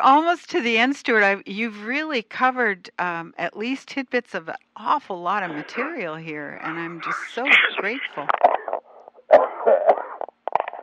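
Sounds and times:
speech: 0:00.0 - 0:08.6
person coughing and spluttering: 0:07.5 - 0:08.0, 0:09.3 - 0:10.2.

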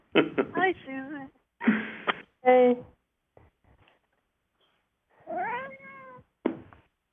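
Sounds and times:
speech: 0:00.2 - 0:02.9
soft taps and rustles: 0:03.3 - 0:04.2
cat meowing: 0:05.2 - 0:06.3.

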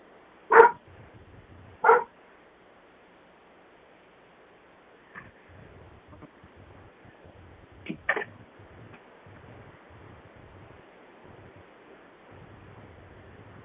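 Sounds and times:
steady hiss of surf-like noise: 0:00.0 - 0:13.6
dog barking outdoors in sharp single barks: 0:00.5 - 0:00.8, 0:01.8 - 0:02.1.

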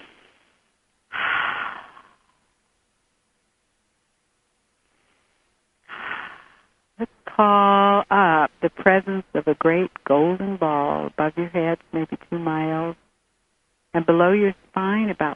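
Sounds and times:
deep breaths during a guided meditation: 0:01.1 - 0:02.5, 0:04.8 - 0:06.8
speech: 0:07.4 - 0:13.0, 0:14.0 - 0:15.3.

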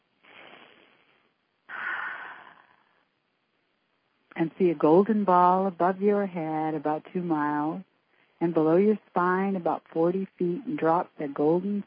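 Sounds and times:
deep breaths: 0:00.2 - 0:03.1, 0:08.0 - 0:08.4
speech: 0:04.4 - 0:11.8.

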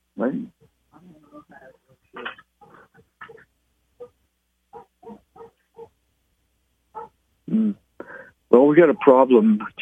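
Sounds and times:
speech: 0:00.2 - 0:00.6, 0:08.7 - 0:09.8
young male dog barking outside a window: 0:02.6 - 0:06.0, 0:06.9 - 0:07.2.

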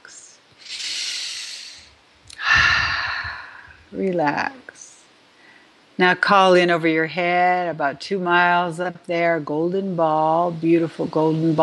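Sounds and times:
deep breaths during a guided relaxation exercise: 0:00.6 - 0:03.9, 0:05.3 - 0:05.8
speech: 0:03.9 - 0:04.6, 0:06.0 - 0:11.6.

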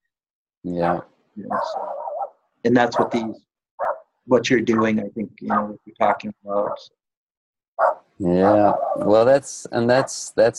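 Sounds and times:
speech: 0:00.6 - 0:02.0, 0:02.6 - 0:03.5, 0:04.3 - 0:07.0, 0:07.8 - 0:10.5
agitated dog barking and yowling: 0:00.8 - 0:04.1, 0:04.7 - 0:06.9, 0:07.8 - 0:09.2.

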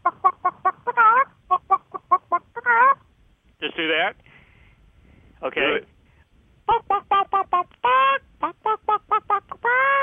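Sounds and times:
person imitating a hen cackling: 0:00.0 - 0:03.0, 0:06.7 - 0:10.0
speech: 0:03.8 - 0:04.3, 0:05.4 - 0:05.9.

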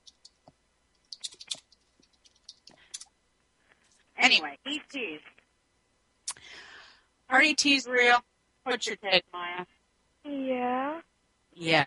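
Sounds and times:
typing on a computer keyboard: 0:00.0 - 0:02.8
speech: 0:04.3 - 0:05.4, 0:07.3 - 0:11.0, 0:11.6 - 0:11.8.

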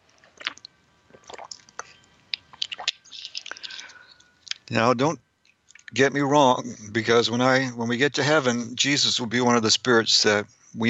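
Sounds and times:
person sipping and swallowing water: 0:00.3 - 0:01.9, 0:02.5 - 0:04.6
soft breathy noise: 0:03.5 - 0:04.4, 0:10.5 - 0:10.8
speech: 0:04.7 - 0:05.2, 0:05.9 - 0:10.8.

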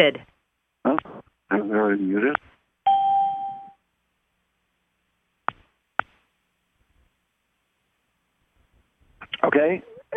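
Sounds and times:
speech: 0:00.0 - 0:00.3, 0:00.9 - 0:02.5, 0:09.4 - 0:10.1
conference call entry or exit chime: 0:02.9 - 0:03.8.

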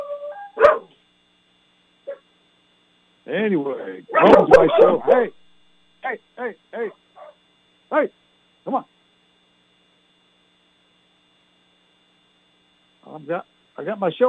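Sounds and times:
dogs barking in San Antonio: 0:00.6 - 0:00.9, 0:04.1 - 0:05.3, 0:07.2 - 0:07.4
speech: 0:03.3 - 0:05.4, 0:06.0 - 0:07.0, 0:07.9 - 0:08.9, 0:13.1 - 0:14.2.

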